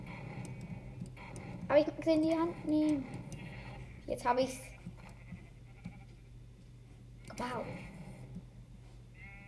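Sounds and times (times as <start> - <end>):
low hum: 0.0 - 9.4
speech: 1.7 - 3.2, 4.1 - 4.7, 7.4 - 7.9
video game sheep bleating: 4.7 - 6.2, 9.2 - 9.4.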